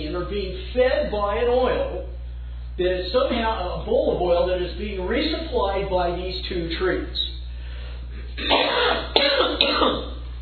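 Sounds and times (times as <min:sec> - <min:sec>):
speech: 0:00.0 - 0:02.2, 0:02.8 - 0:07.3, 0:08.4 - 0:10.1
steady low hum: 0:00.0 - 0:10.3
rough cough with throat clearing: 0:08.2 - 0:10.2.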